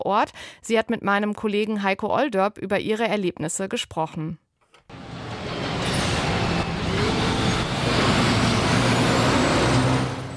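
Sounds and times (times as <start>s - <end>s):
speech: 0.0s - 4.4s
trucks and cars rumbling past on a city street: 4.9s - 10.3s.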